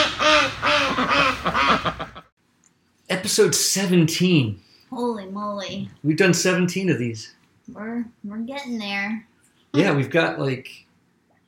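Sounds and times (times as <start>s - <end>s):
ducks quacking: 0.0s - 2.3s
speech: 3.2s - 10.8s.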